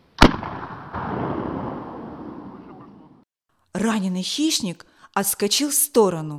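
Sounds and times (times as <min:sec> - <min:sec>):
gunshot with rolling echo: 0:00.2 - 0:03.0
speech: 0:03.8 - 0:06.3.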